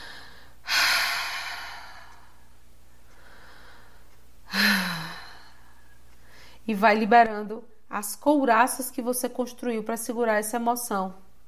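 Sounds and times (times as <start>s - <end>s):
deep breaths during a guided breathing exercise: 0.0s - 6.7s
speech: 6.7s - 11.2s.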